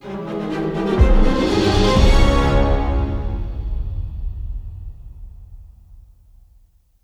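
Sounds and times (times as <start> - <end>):
outro music: 0.0 - 5.0.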